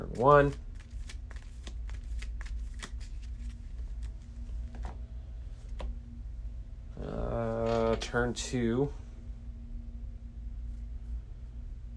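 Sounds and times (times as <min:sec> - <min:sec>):
deck of game cards being shuffled: 0:00.0 - 0:05.0
low steady hum: 0:00.0 - 0:11.9
speech: 0:00.2 - 0:00.6, 0:08.1 - 0:09.0.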